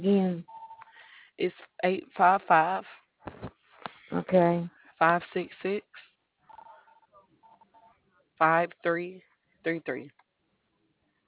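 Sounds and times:
second telephone ringing in warbling tones: 0.5s - 0.9s, 6.5s - 8.0s
speech: 1.4s - 3.4s, 4.1s - 6.0s, 8.4s - 10.2s.

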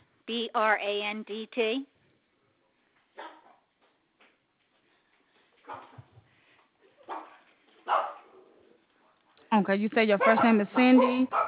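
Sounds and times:
speech: 0.3s - 1.9s, 9.6s - 11.4s
several dogs barking: 3.2s - 3.7s, 7.0s - 8.6s, 10.1s - 11.4s.

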